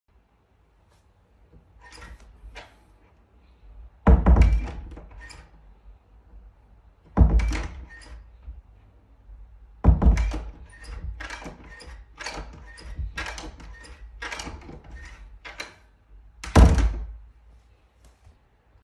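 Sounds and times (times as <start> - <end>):
door handle: 4.1 - 5.6, 7.1 - 8.4, 9.9 - 17.1.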